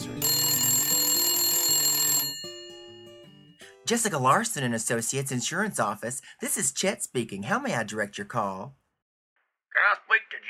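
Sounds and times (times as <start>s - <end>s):
telephone ringing with a high electronic trill in an office: 0.0s - 3.6s
speech: 3.9s - 8.8s.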